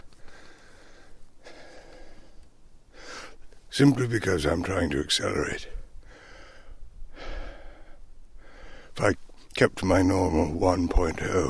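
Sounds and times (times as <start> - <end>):
heavy labored breathing while walking uphill: 0.0 - 3.4, 6.0 - 9.0
speech: 3.8 - 5.8, 9.0 - 11.4.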